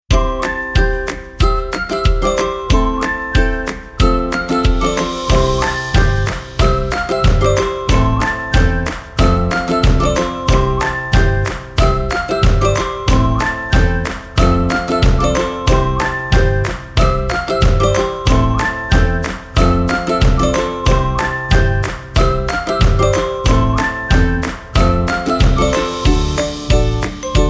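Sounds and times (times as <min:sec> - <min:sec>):
ukulele: 0:00.1 - 0:27.4
whistling: 0:04.3 - 0:27.2.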